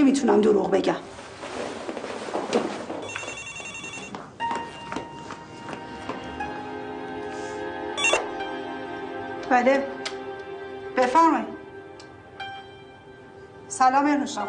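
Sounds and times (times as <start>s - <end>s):
speech: 0.1s - 1.3s, 9.5s - 10.0s, 11.0s - 11.5s, 13.8s - 14.4s
faint footsteps: 1.0s - 6.7s
telephone ringing with electronic tones: 3.0s - 4.3s, 8.0s - 8.3s.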